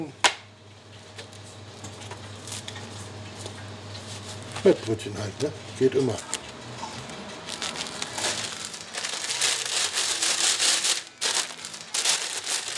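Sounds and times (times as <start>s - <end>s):
speech: 0.0s - 0.2s, 4.6s - 6.4s
plastic bag crinkling as it is twisted shut: 6.2s - 12.7s.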